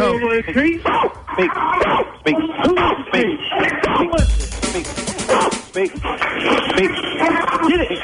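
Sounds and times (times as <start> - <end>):
people talking: 0.0 - 8.0
dog barking: 0.8 - 4.1
laughter: 1.4 - 8.0.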